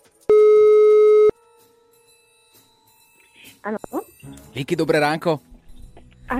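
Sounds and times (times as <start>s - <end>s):
telephone ringback tone while dialing a call: 0.3s - 1.4s
speech: 3.6s - 5.5s.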